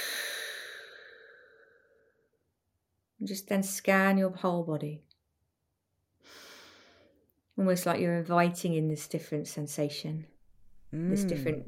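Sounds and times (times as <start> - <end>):
long deep exhale during a breathing relaxation exercise: 0.0 - 2.1
speech: 3.2 - 5.1, 7.6 - 10.3, 10.9 - 11.6.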